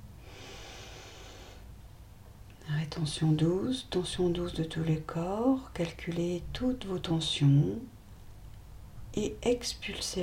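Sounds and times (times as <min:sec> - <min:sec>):
deep breath in during a guided breathing exercise: 0:00.2 - 0:01.7
speech: 0:02.9 - 0:08.0, 0:09.2 - 0:10.2.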